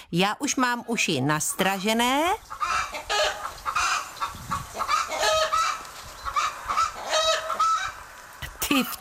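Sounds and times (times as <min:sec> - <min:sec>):
speech: 0:00.1 - 0:03.3, 0:08.7 - 0:09.0
chicken clucking: 0:02.5 - 0:08.0.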